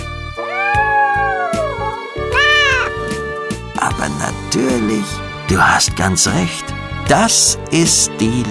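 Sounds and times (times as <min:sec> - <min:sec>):
cat meowing: 0:00.4 - 0:03.1
speech: 0:04.5 - 0:08.4.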